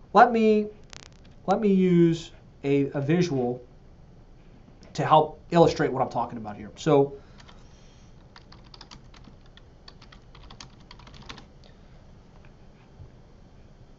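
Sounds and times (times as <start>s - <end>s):
speech: 0.1s - 0.8s, 1.5s - 3.7s, 5.0s - 7.2s
typing a search query on a computer keyboard: 8.3s - 11.5s.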